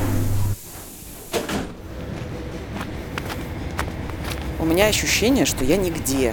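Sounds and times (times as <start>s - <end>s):
commuter train doors sliding shut with a solid thud: 0.0s - 2.7s
low rumbling ambience: 0.0s - 6.3s
steady mechanical hum: 0.0s - 6.3s
speech: 4.6s - 6.3s.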